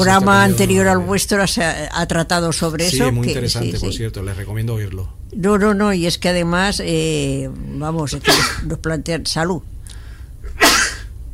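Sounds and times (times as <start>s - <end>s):
speech: 0.0s - 9.7s
sneeze: 8.2s - 8.7s, 10.5s - 11.1s.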